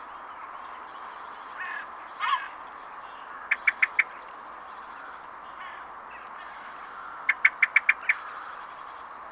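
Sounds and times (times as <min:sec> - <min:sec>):
common blackbird Turdus merula clicking calls: 0:03.3 - 0:04.4, 0:05.0 - 0:08.6.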